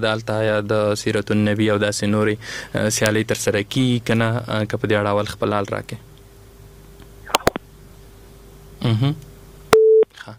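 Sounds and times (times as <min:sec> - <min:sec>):
speech: 0:00.0 - 0:06.1, 0:08.8 - 0:09.3
faint constant hum: 0:00.0 - 0:10.3
sharp clicks: 0:07.3 - 0:07.6
telephone busy tone after a caller's line was cut: 0:09.8 - 0:10.0.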